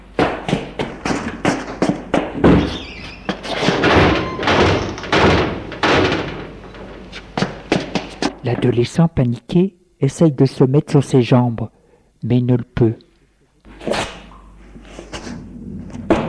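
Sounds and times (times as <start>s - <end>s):
footsteps inside a shop: 0.2s - 8.7s
metal roller shutters being raised inside a shop: 2.5s - 8.3s
speech: 8.6s - 13.1s.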